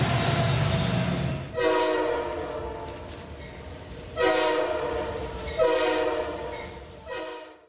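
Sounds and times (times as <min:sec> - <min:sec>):
low rolling rumble from a moving train: 0:00.0 - 0:07.6
train horn blasts: 0:01.5 - 0:03.1, 0:04.2 - 0:07.6.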